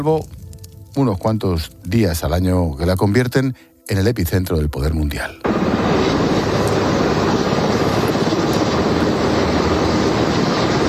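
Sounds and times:
speech: 0:00.0 - 0:00.4, 0:01.0 - 0:05.9
helicopters flying overhead: 0:05.4 - 0:10.8.

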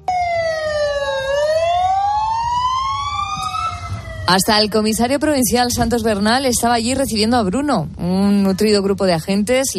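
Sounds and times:
police car siren wailing: 0:00.0 - 0:05.2
low rumble of engine and road noise: 0:00.0 - 0:09.7
speech: 0:04.3 - 0:09.7.

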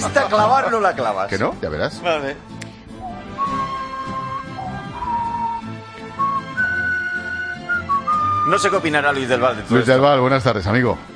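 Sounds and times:
speech: 0:00.0 - 0:02.6, 0:08.5 - 0:11.1
person whistling a short melody: 0:03.0 - 0:08.8.

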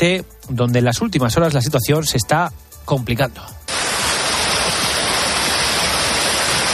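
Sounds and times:
speech: 0:00.0 - 0:03.6
heavy rain pouring down: 0:03.7 - 0:06.7.

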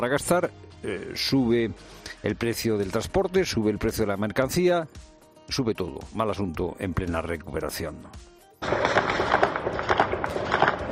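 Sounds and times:
speech: 0:00.0 - 0:09.0
rapid celebratory gunfire from fighters in Afghanistan: 0:08.6 - 0:10.9.

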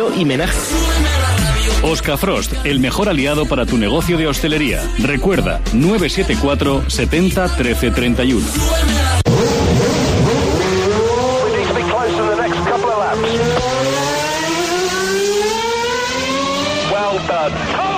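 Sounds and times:
speech: 0:00.0 - 0:09.8
car engines roaring: 0:09.2 - 0:17.9.

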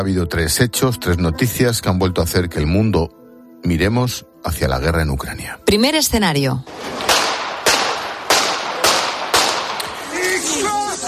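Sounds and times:
speech: 0:00.0 - 0:07.2
sharp gunshots: 0:06.7 - 0:11.0.

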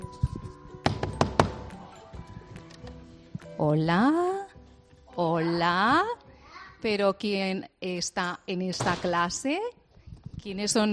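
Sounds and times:
knocking on the door of a school classroom: 0:00.8 - 0:01.8
speech: 0:03.6 - 0:04.4, 0:05.4 - 0:06.2, 0:06.8 - 0:09.8, 0:10.4 - 0:10.9.

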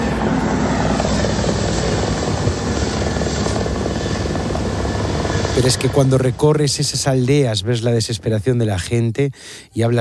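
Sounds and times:
firefighting helicopter rotor thumping overhead while taking water from a river: 0:00.0 - 0:07.5
speech: 0:05.6 - 0:09.9.

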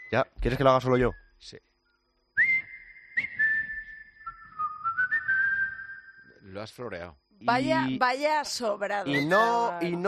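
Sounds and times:
speech: 0:00.1 - 0:01.7, 0:06.4 - 0:10.0
person whistling a sustained wavering tune: 0:02.4 - 0:06.4.

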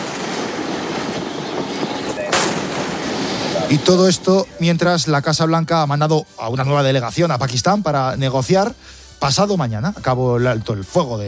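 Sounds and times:
heavy disabling gunfire on a ship fired by US forces: 0:00.0 - 0:04.1
speech: 0:03.7 - 0:11.2.

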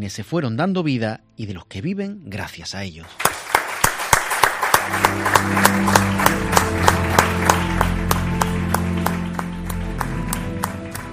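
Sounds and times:
speech: 0:00.0 - 0:03.4, 0:04.9 - 0:07.0
large crowd applauding in rhythmic unison: 0:03.0 - 0:11.1.

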